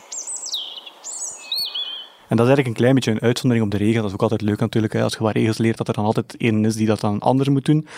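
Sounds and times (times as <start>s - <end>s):
European robin singing: 0.0s - 5.7s
speech: 2.3s - 7.9s.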